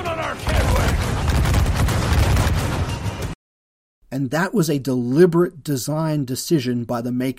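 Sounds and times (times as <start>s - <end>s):
ship's cannons firing in a video game: 0.0s - 3.4s
speech: 4.2s - 7.3s.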